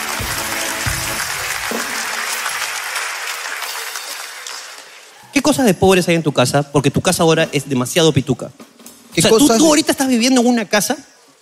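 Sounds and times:
audience applause of many hands clapping: 0:00.0 - 0:05.2
speech: 0:05.5 - 0:11.1.

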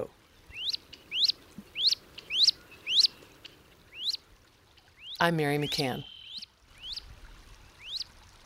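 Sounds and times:
wood ducklings peeping on a pond: 0:00.5 - 0:04.2, 0:05.0 - 0:07.0, 0:07.8 - 0:08.1
speech: 0:05.2 - 0:06.1.

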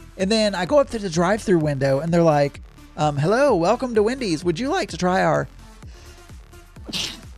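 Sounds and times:
speech: 0:00.2 - 0:05.6, 0:06.9 - 0:07.2
person sneezing: 0:06.8 - 0:07.3.

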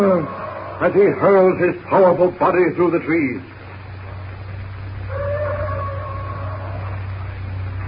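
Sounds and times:
bull ape roaring: 0:00.0 - 0:01.5, 0:04.0 - 0:07.8
speech: 0:00.0 - 0:03.6
low hum: 0:00.0 - 0:07.8.

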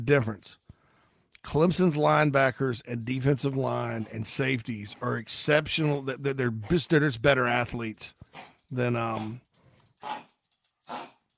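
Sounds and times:
speech: 0:00.0 - 0:00.6, 0:01.4 - 0:09.4, 0:10.0 - 0:10.3
dog hacking and coughing: 0:08.3 - 0:10.3, 0:10.9 - 0:11.2.

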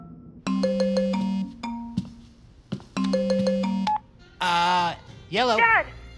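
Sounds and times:
mobile phone ringtone with repeating electronic melody of beeping tones: 0:00.5 - 0:02.3, 0:03.0 - 0:04.1
speech: 0:05.3 - 0:05.9.

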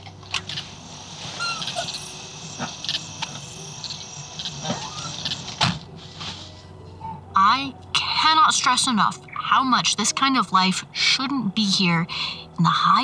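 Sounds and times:
high-pitched insect drone outdoors: 0:00.1 - 0:05.9
birds chirping outdoors: 0:00.7 - 0:05.6
speech: 0:08.7 - 0:12.9.

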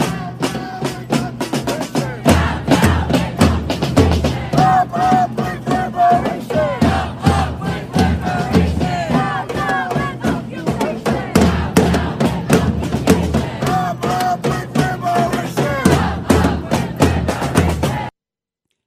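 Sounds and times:
protest crowd chanting in New York City streets: 0:00.0 - 0:18.1.

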